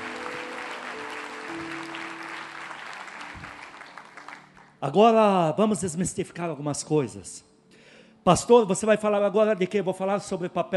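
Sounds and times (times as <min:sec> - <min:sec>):
large crowd applauding: 0:00.0 - 0:04.8
speech: 0:04.8 - 0:07.5, 0:08.2 - 0:10.7.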